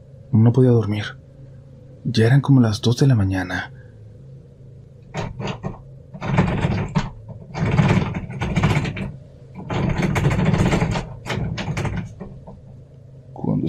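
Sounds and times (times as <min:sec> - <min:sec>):
speech: 0:00.3 - 0:01.2, 0:02.0 - 0:03.8
key turning in a door lock: 0:05.2 - 0:12.4.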